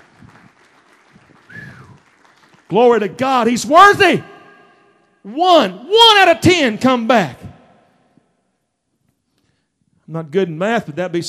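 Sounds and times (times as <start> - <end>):
church congregation clapping in praise: 0.0 - 4.2
speech: 2.7 - 4.3, 5.2 - 7.5, 10.1 - 11.2.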